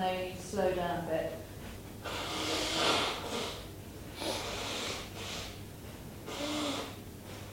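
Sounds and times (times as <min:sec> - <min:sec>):
speech: 0:00.0 - 0:02.9
forceful nasal exhales of breath-of-fire yoga breathing: 0:02.0 - 0:05.6, 0:06.2 - 0:07.5.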